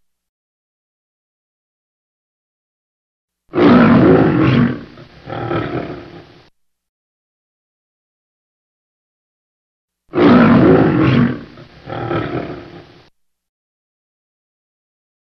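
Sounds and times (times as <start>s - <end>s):
lion roaring: 3.5s - 6.4s, 10.1s - 13.1s.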